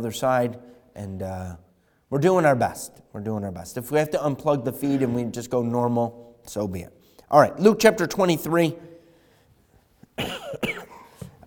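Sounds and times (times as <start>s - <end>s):
speech: 0.0s - 8.9s
dry coughs from a person with a lingering residual cough: 10.1s - 11.4s.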